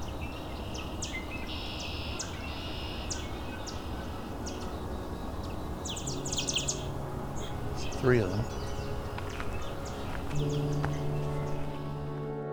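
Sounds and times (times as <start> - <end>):
yellow warblers chipping and singing: 0.0 - 12.4
speech: 8.0 - 8.6.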